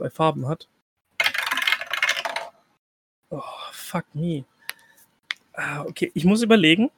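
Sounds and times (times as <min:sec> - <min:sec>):
speech: 0:00.0 - 0:00.8, 0:03.3 - 0:04.5, 0:05.6 - 0:06.9
die clattering across a hard tabletop: 0:01.2 - 0:02.6.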